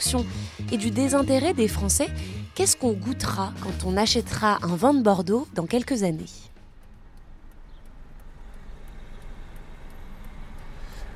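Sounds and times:
speech: 0.0s - 6.5s
faint ticking: 0.2s - 11.1s
moving car interior road and engine noise: 5.6s - 11.1s.

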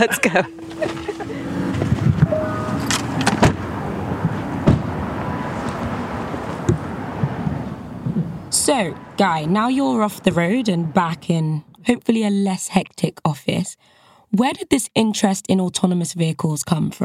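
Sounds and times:
speech: 0.0s - 1.0s, 8.7s - 17.0s
laughter: 0.0s - 1.8s
low rumble of traffic: 0.0s - 12.9s
wind: 0.0s - 13.2s
car doors clunking: 0.2s - 8.4s.

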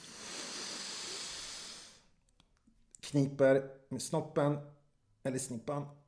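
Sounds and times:
deep breath during a breathing exercise: 0.0s - 2.2s
speech: 3.1s - 6.0s.

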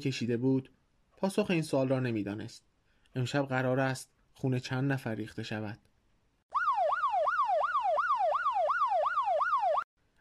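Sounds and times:
speech: 0.0s - 5.9s
distant siren wailing: 6.5s - 9.9s.

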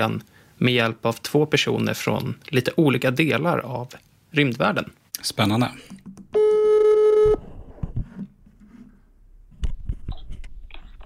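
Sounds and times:
speech: 0.0s - 6.0s
telephone ring tone on an outgoing call: 6.4s - 7.4s.

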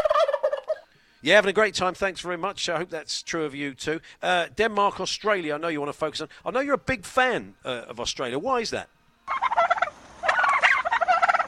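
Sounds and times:
turkey gobbling: 0.0s - 0.9s, 9.3s - 11.4s
speech: 1.2s - 9.0s.

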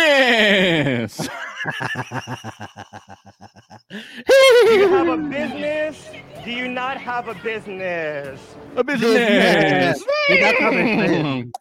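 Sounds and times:
laughter: 0.2s - 11.5s
speech: 1.2s - 3.2s, 3.9s - 11.5s
human voice imitating a horse neigh: 4.3s - 5.2s.

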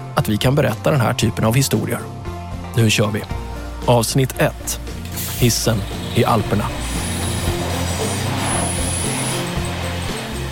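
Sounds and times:
speech: 0.2s - 2.2s, 2.8s - 6.8s
moving railcar rumbling through the Alps: 4.5s - 10.5s
train wheels squealing on curves through the Alps along the Salzach river: 5.7s - 10.5s.

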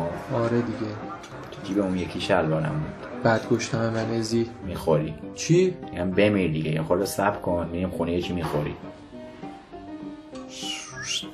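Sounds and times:
speech: 0.3s - 9.0s
person whistling short sliding high notes: 10.4s - 11.3s.

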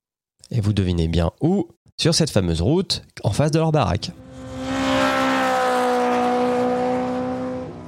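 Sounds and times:
speech: 0.5s - 4.2s
truck engine drone passing on road: 4.1s - 7.8s.

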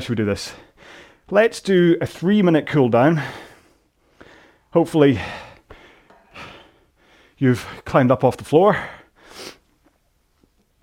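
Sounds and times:
speech: 0.0s - 3.4s, 4.7s - 5.4s, 7.4s - 9.6s
heavy labored breathing after sprint rowing: 0.4s - 1.3s, 3.2s - 7.8s.

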